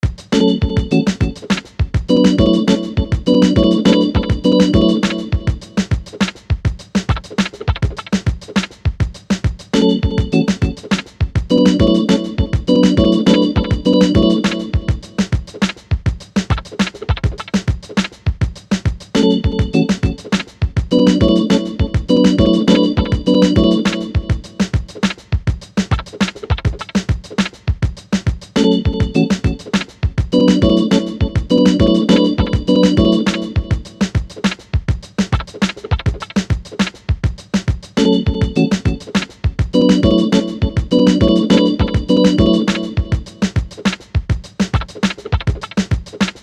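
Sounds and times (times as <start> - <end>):
hip hop beat: 0.0 - 18.2, 18.8 - 46.4
organ with delay effect: 0.2 - 6.2, 9.6 - 15.7, 19.0 - 25.2, 28.4 - 34.5, 37.9 - 44.0.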